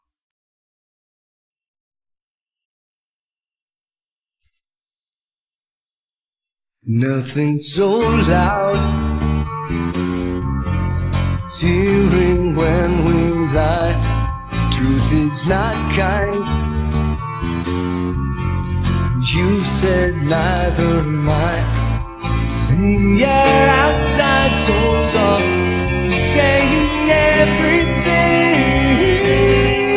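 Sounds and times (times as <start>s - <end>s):
music without drums: 6.9s - 29.9s.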